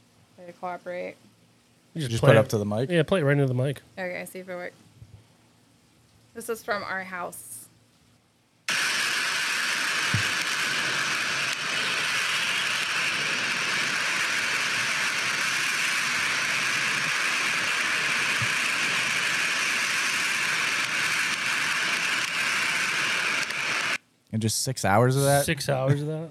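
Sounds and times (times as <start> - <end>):
speech: 0.4 - 1.4, 2.0 - 4.9, 6.4 - 7.5, 24.3 - 26.2
storm wind roaring at a house: 8.7 - 23.6.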